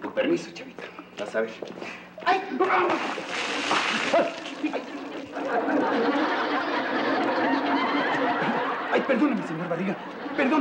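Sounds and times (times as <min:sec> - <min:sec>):
speech: 0:00.2 - 0:07.2, 0:07.9 - 0:10.5
water being thrown out, splashing and sloshing: 0:02.7 - 0:05.4
people laughing: 0:03.4 - 0:10.5.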